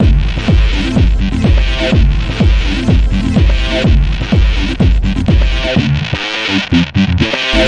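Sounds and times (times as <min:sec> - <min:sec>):
pumping kick drums at 125 bpm: 0:00.0 - 0:06.0
bassline in sampled music loop: 0:00.0 - 0:07.6.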